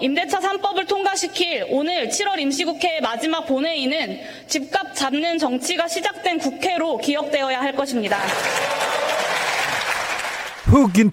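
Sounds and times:
speech: 0.0s - 9.3s, 10.7s - 11.1s
crowd clapping in the Korean National Assembly plenary chamber: 8.1s - 11.1s.

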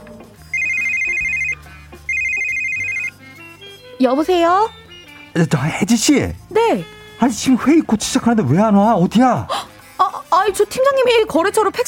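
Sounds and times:
office telephone ringing for an outside call: 0.5s - 3.2s
speech: 4.0s - 4.8s, 5.4s - 9.6s, 10.5s - 11.8s.

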